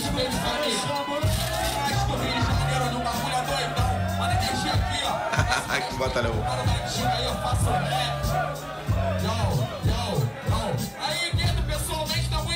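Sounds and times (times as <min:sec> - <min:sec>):
laughter: 0:00.0 - 0:11.0
crowd at a rap battle roaring and cheering: 0:00.0 - 0:12.5
steady low bass beat: 0:01.2 - 0:12.5
speech: 0:05.6 - 0:10.9.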